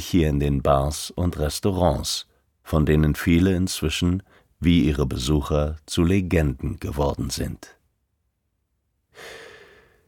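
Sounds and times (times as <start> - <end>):
speech: 0.0 - 7.8, 9.2 - 9.4
deep breath in: 9.1 - 10.0.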